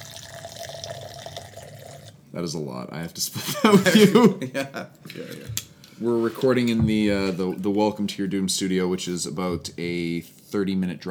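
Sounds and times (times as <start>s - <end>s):
whiskey poured from about a foot above a glass: 0.0s - 2.3s
speech: 2.3s - 11.0s
laughter: 3.3s - 5.5s.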